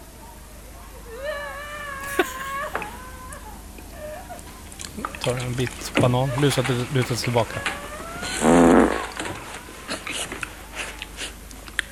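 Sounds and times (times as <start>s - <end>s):
faint scattered noises: 0.0s - 11.9s
laughter: 0.9s - 11.2s
quiet shuffling: 2.0s - 11.6s
speech: 5.0s - 8.4s
loud buzzy fart: 8.2s - 9.5s.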